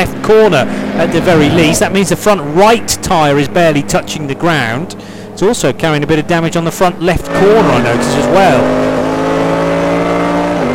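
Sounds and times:
speech: 0:00.0 - 0:08.9
race car engine revving hard at high revs with gear shifts: 0:00.0 - 0:10.7.

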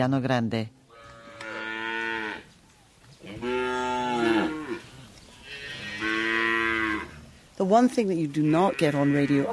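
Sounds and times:
speech: 0:00.0 - 0:00.8, 0:07.6 - 0:09.5
cattle mooing in a ranch enclosure: 0:00.9 - 0:02.5, 0:03.2 - 0:07.2, 0:08.4 - 0:09.5.

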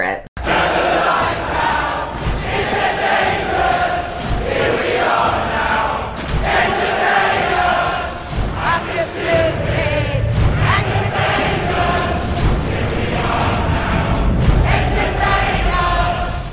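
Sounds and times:
heavier low-end backing: 0:00.4 - 0:16.5
large crowd of mine workers singing a 90s grunge rock song: 0:00.4 - 0:16.5.

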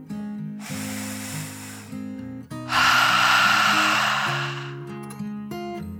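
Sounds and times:
deep breath in and out: 0:00.6 - 0:04.8.

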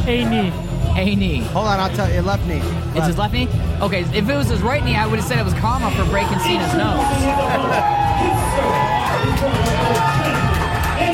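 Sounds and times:
speech: 0:00.0 - 0:10.4
crowd cheering loudly at a live wrestling show: 0:05.8 - 0:11.1.

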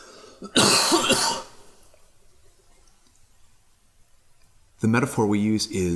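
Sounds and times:
speech: 0:00.4 - 0:00.8, 0:04.8 - 0:05.9
rough throaty cough: 0:00.4 - 0:01.7.

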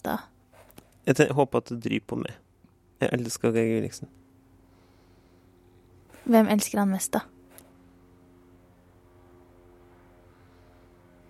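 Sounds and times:
speech: 0:00.0 - 0:00.3, 0:01.0 - 0:02.4, 0:03.0 - 0:04.2, 0:06.2 - 0:07.4
propeller airplane droning overhead: 0:02.4 - 0:11.2.

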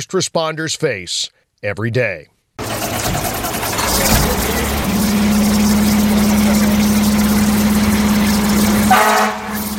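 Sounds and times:
speech: 0:00.0 - 0:03.4, 0:04.0 - 0:04.9, 0:08.9 - 0:09.4
fire truck engine idling: 0:02.6 - 0:09.7.

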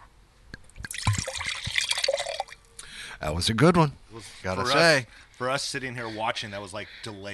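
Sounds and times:
rosé wine pouring from a heavy glass bottle into a glass: 0:00.8 - 0:02.6
speech: 0:03.2 - 0:07.3.

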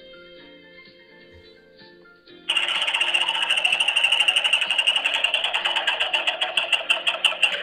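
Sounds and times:
prize wheel spun in a game ratcheting whir of ticks: 0:02.5 - 0:07.6.

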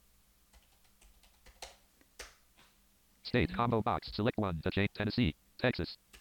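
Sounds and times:
typing on a computer keyboard: 0:00.5 - 0:02.4
speech: 0:03.3 - 0:06.0.

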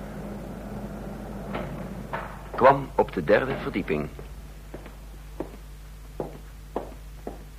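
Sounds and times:
elevator door sliding open and shut in a small apartment building: 0:00.0 - 0:04.5
low mechanical elevator hum in a small apartment building lift: 0:00.0 - 0:07.5
speech: 0:02.6 - 0:04.2.

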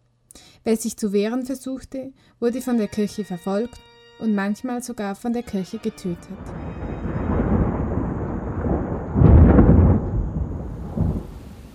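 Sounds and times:
speech: 0:00.6 - 0:06.8
faint rain: 0:06.3 - 0:11.7
deep continuous thunder rumbling in a thunderstorm: 0:06.4 - 0:11.7.

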